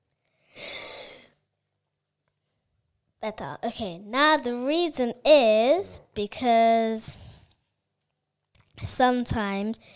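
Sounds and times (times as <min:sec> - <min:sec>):
speaker taking a soft airy breath: 0:00.3 - 0:01.4
speech: 0:03.2 - 0:07.2, 0:08.8 - 0:09.9.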